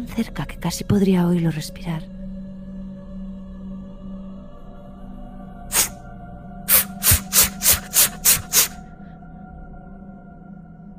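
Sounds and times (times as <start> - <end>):
speech: 0.0 - 2.2
three-pronged tool stabbing and tearing a painting: 6.7 - 8.8.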